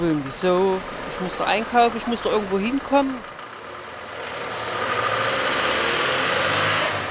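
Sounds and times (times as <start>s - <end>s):
speech: 0.0s - 3.3s
car engine idling: 0.0s - 7.0s.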